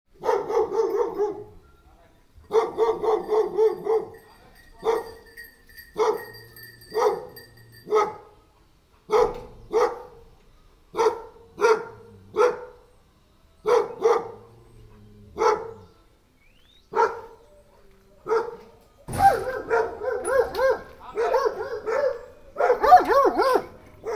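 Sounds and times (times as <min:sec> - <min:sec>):
dogs barking at a gate: 0:00.1 - 0:01.6, 0:02.5 - 0:05.2, 0:05.9 - 0:08.4, 0:09.0 - 0:10.3, 0:10.9 - 0:12.8, 0:13.6 - 0:16.0, 0:16.9 - 0:17.5, 0:18.2 - 0:24.1.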